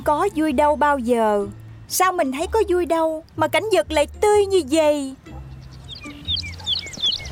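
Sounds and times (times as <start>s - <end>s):
speech: 0.0s - 5.3s
several birds chirping and tweeting: 4.8s - 7.3s.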